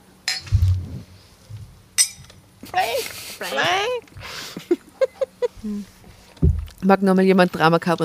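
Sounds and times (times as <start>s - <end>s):
glasses clinking during a toast: 0.3s - 0.5s, 2.0s - 2.4s
speech: 2.7s - 4.0s, 6.8s - 8.0s
laughter: 4.3s - 5.8s
soft low thud: 6.4s - 6.8s.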